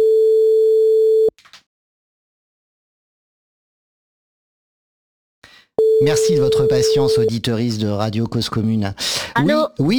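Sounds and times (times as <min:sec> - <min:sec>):
telephone line tone while calling someone back: 0:00.0 - 0:01.3, 0:05.8 - 0:07.3
speech: 0:06.0 - 0:09.9.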